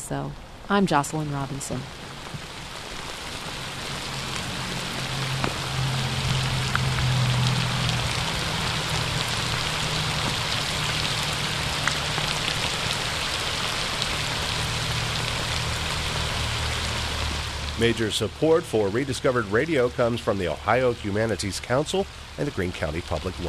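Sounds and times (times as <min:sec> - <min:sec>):
steady spring rain on a hard surface in a park: 0:00.0 - 0:23.4
speech: 0:00.1 - 0:02.0, 0:17.8 - 0:23.4.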